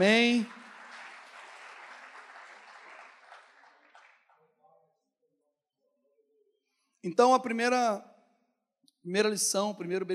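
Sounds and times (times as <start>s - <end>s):
speech: 0.0s - 0.6s, 7.0s - 8.1s, 9.0s - 10.1s
large crowd applauding: 0.0s - 4.5s.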